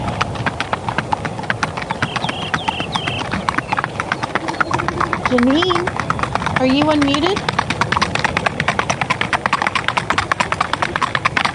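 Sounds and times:
wild Icelandic horses running with hooves clip-clopping in Iceland: 0.0 - 11.5
high tonal calls: 1.8 - 7.5
speech: 5.3 - 6.0, 6.6 - 7.5.

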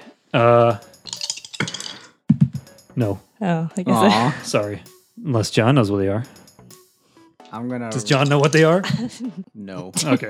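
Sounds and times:
speech: 0.4 - 0.9, 3.0 - 6.4, 7.5 - 10.2
small six-sided dice rattling across a hard tabletop: 1.0 - 2.1
laughter: 3.9 - 4.8, 8.0 - 10.2.

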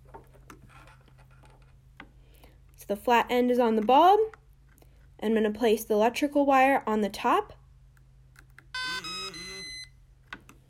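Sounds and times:
speech: 2.9 - 4.4, 5.2 - 7.6
battery tester electronic beeps: 8.7 - 10.0.

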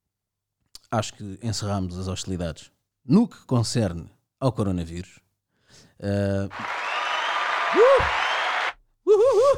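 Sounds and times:
speech: 0.9 - 6.8
dense steady audience applause sound effect: 6.5 - 8.8
vocal whoop in audience applause: 6.6 - 9.5.

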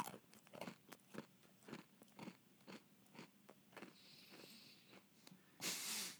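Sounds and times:
man chewing hard dry dog treats: 0.0 - 3.9
hiss: 5.6 - 6.1.

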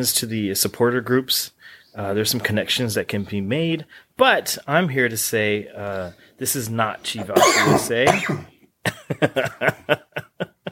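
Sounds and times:
speech: 0.0 - 10.0
fit of harsh repeated coughing: 7.2 - 8.6
laughter: 8.9 - 10.7.

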